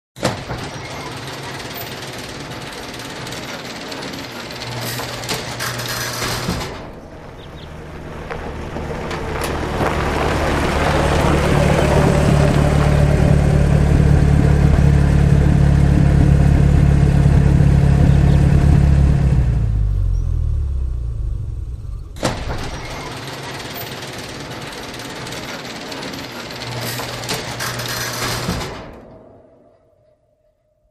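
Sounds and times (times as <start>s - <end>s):
creaky electric garage door opening: 0.2s - 12.6s, 22.0s - 30.1s
car pulling in: 0.6s - 29.6s.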